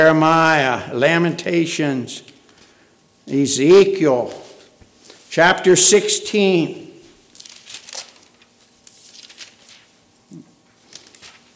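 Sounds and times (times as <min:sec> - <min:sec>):
speech: 0:00.0 - 0:02.4, 0:03.3 - 0:04.4, 0:05.3 - 0:06.8
thin paper pages of a book being turned back: 0:07.3 - 0:11.5.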